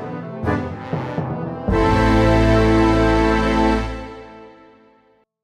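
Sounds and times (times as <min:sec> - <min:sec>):
epic music stinger: 0:00.7 - 0:04.7.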